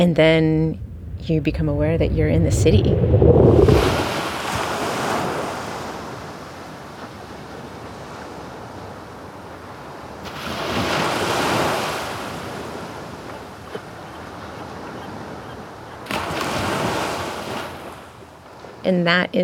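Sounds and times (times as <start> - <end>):
speech: 0.0 - 4.0, 18.9 - 19.4
broadband hiss of wind: 0.0 - 5.6
waves washing against the shore: 0.0 - 15.4, 16.0 - 18.6.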